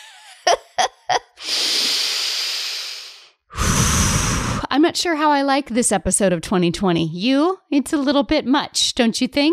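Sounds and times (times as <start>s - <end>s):
group taking a deep breath: 1.4s - 4.7s
speech: 4.9s - 9.5s.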